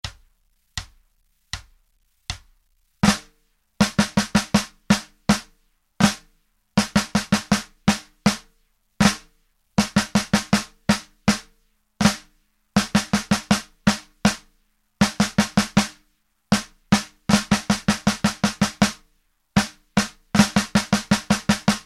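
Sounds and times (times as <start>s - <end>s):
drum flams: 0.0s - 6.2s, 6.8s - 12.2s, 12.8s - 14.4s, 15.0s - 15.9s, 16.5s - 19.0s, 19.6s - 21.8s.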